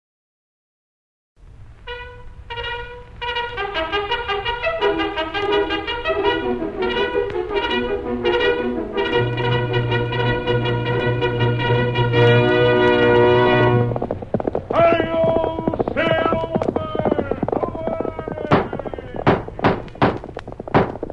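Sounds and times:
loud brassy orchestral music: 1.8 - 14.0
galloping horse hoofbeats: 2.5 - 21.1.

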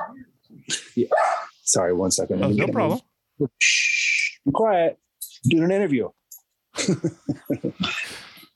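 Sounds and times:
speech: 0.1 - 6.2, 6.8 - 8.2
dogs yipping in a room: 1.1 - 1.6
laughter: 6.8 - 8.3.

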